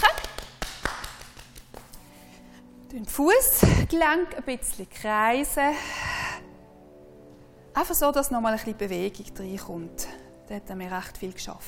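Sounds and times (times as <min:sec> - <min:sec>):
hands patting and tapping down the legs: 0:00.0 - 0:02.2
speech: 0:02.9 - 0:06.0, 0:07.8 - 0:11.6.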